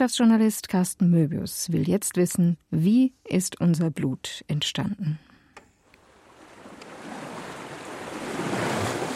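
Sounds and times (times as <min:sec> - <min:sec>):
speech: 0:00.0 - 0:05.3
ocean surf washing: 0:06.0 - 0:09.1
wind roaring: 0:06.2 - 0:09.1.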